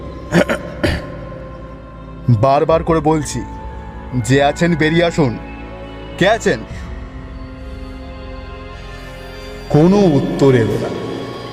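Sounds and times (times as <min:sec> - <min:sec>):
man clearing his throat: 0:00.3 - 0:01.2
speech: 0:02.3 - 0:05.5, 0:06.2 - 0:06.8, 0:09.7 - 0:11.0.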